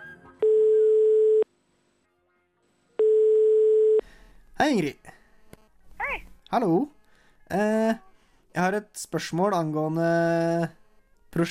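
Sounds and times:
telephone ringback tone on an outgoing call line: 0.4s - 1.5s, 3.0s - 4.0s
speech: 4.6s - 5.2s, 6.5s - 11.4s.

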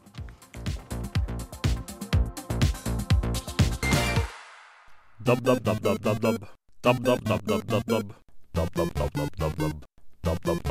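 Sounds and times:
electronic music track with punchy beat and synth layers: 0.0s - 4.9s
speech: 5.3s - 10.6s.

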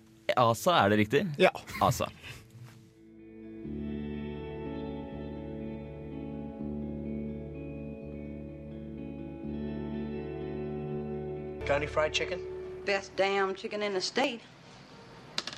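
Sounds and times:
speech: 0.3s - 2.4s, 11.7s - 14.6s
heavily reverberant guitar tones in an instrumental song: 2.2s - 14.2s.

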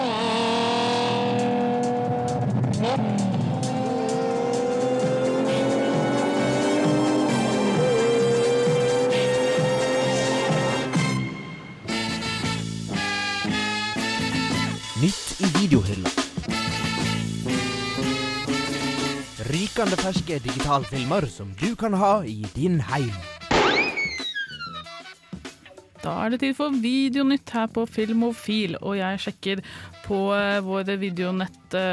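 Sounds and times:
race car engines revving and roaring: 0.0s - 11.1s, 16.4s - 19.4s
music: 1.2s - 31.9s
speech: 19.8s - 23.3s, 26.3s - 31.9s.

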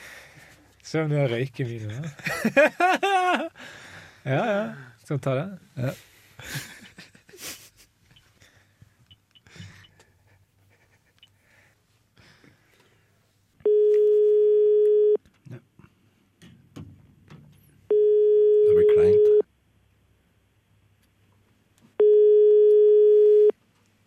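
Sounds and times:
faint breathing: 0.0s - 0.8s, 3.6s - 5.0s, 8.3s - 10.4s, 11.3s - 13.4s
speech: 0.9s - 3.4s, 4.2s - 6.7s
laughter: 1.9s - 3.6s, 6.4s - 7.8s
telephone ringing tone on a call: 13.6s - 15.2s, 17.9s - 19.4s, 22.0s - 23.5s.

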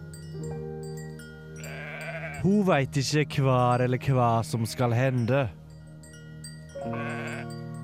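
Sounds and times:
sheep bleating: 1.6s - 2.5s, 6.8s - 7.5s
speech: 2.4s - 5.6s.

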